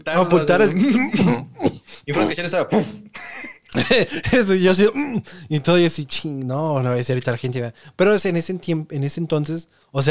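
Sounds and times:
speech: 0.0 - 3.1, 3.7 - 10.0
stifled cough: 0.6 - 4.2, 4.9 - 5.3
laughter: 2.2 - 4.4.

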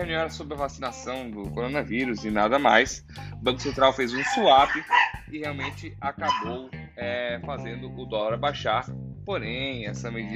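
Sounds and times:
speech: 0.0 - 10.3
dog barking outside at the gate: 4.1 - 6.6.

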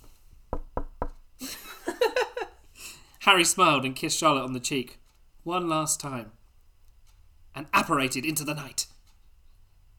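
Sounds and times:
sharp knocks on a door: 0.5 - 1.2
laughter: 1.4 - 2.6
speech: 3.2 - 6.4, 7.6 - 8.9.

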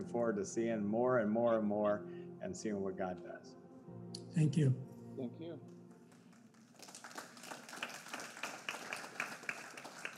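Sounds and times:
speech: 0.0 - 3.6, 4.4 - 5.8
audience applauding: 6.1 - 10.1.

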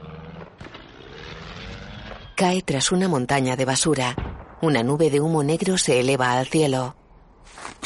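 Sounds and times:
small plane flying erratically: 0.0 - 2.4
speech: 2.4 - 7.6.

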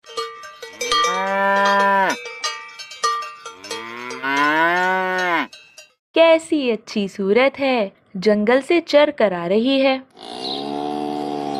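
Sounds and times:
rhythmic cowbell clanking: 0.0 - 6.0
cow mooing: 1.0 - 2.2, 3.6 - 5.5, 10.1 - 11.5
speech: 6.4 - 10.6.

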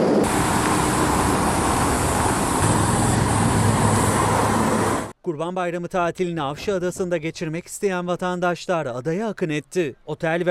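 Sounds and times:
dense road traffic of idling and slowly moving vehicles in a jam: 0.1 - 5.1
speech: 5.4 - 10.4.

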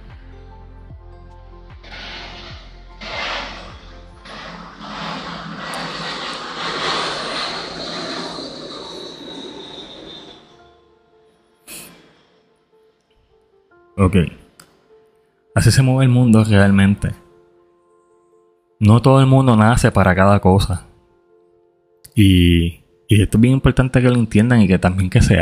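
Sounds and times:
airplane engine passing with a high whine: 1.8 - 10.8
speech: 14.0 - 14.4, 15.6 - 17.2, 18.8 - 20.9, 22.2 - 25.3.

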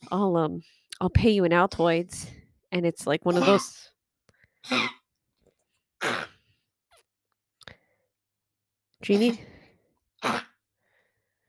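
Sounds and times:
speech: 0.1 - 3.9, 4.6 - 5.0, 9.0 - 9.5, 10.2 - 10.5
sharp cough: 4.6 - 5.0.

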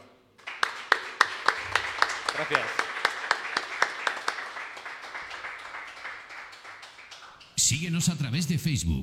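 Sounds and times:
sharp claps: 0.4 - 7.7
audience applause: 0.4 - 8.0
speech: 2.4 - 2.8, 7.7 - 9.0.

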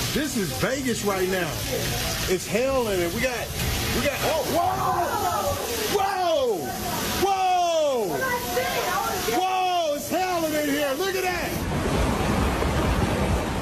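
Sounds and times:
floodwater after torrential rain rushing over hotel and casino parking lots: 0.0 - 13.5
people shouting and calling out excitedly: 4.0 - 11.4.

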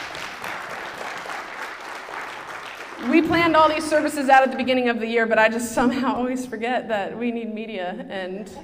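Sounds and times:
church audience applauding with hand clapping: 0.0 - 3.3
speech: 3.0 - 8.6.

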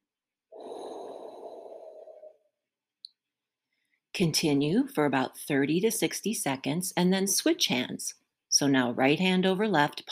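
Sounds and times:
slow breath exhaled through parted lips: 0.5 - 2.4
speech: 4.2 - 10.0.

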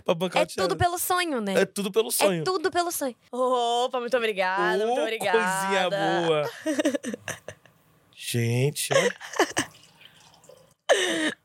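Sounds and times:
speech: 0.1 - 7.5, 8.2 - 9.7, 10.9 - 11.4
laughter: 6.0 - 7.6, 8.9 - 9.7
water pouring into a glass: 9.6 - 10.9.

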